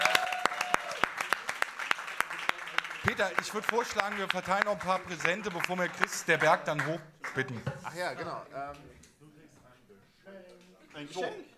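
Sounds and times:
audience applause at a live gala show: 0.0 - 8.4
laughter: 2.2 - 9.9, 10.6 - 11.5
speech: 3.0 - 9.1, 10.3 - 11.5.

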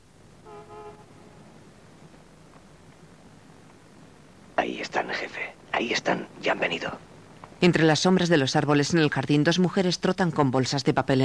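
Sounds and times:
hiss: 0.0 - 11.2
car horn honking outside: 0.4 - 1.4
speech: 4.6 - 11.2.

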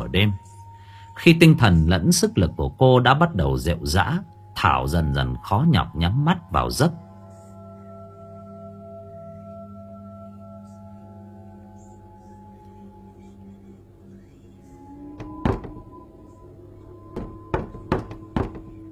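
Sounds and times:
low humming drone: 0.0 - 18.9
speech: 0.1 - 0.5, 1.2 - 7.0
knocking on a window at midnight: 15.2 - 15.8, 17.1 - 18.9.

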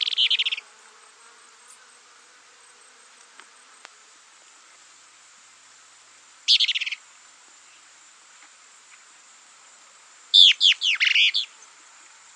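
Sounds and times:
plain-crested elaenia Elaenia cristata cristata calls: 0.0 - 0.7, 6.5 - 7.0, 10.4 - 11.6
steady high hiss: 0.0 - 12.3.

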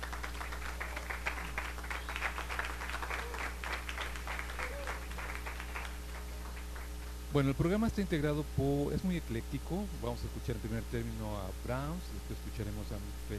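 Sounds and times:
audience applauding a university choir at a concert: 0.0 - 7.2
speech: 7.3 - 13.3.

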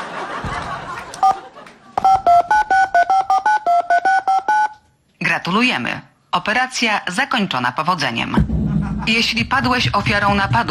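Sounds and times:
laughter: 0.0 - 2.0, 8.5 - 9.7
telephone keypad tones entering a PIN on an automated phone line: 2.0 - 4.8
speech: 5.5 - 10.6.

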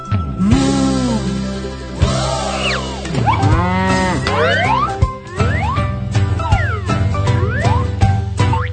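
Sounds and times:
bright children's song musical backing: 0.0 - 8.7
cow mooing in a children's song: 3.3 - 4.9.

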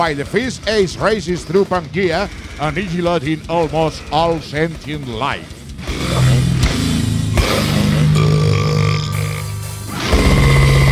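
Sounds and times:
speech: 0.0 - 6.3
long loud deep burp after a meal: 5.8 - 10.9.

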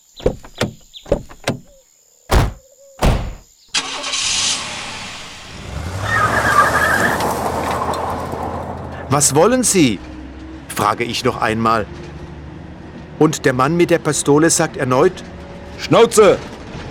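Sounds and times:
knocks and thuds: 0.0 - 3.5
car engine starting as the car pulls away: 0.0 - 16.8
speech: 9.2 - 10.1, 10.8 - 12.1, 13.2 - 16.5.

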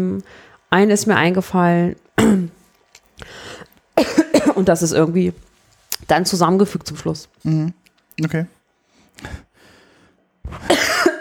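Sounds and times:
speech: 0.0 - 2.5, 3.2 - 8.6, 9.2 - 9.4
person coughing: 2.2 - 2.6, 4.0 - 4.7, 10.5 - 11.1.

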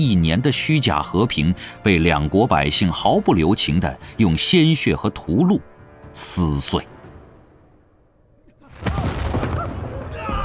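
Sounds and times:
speech: 0.0 - 6.9
explosions in a city's main road and surrounding alleys: 8.7 - 10.4.

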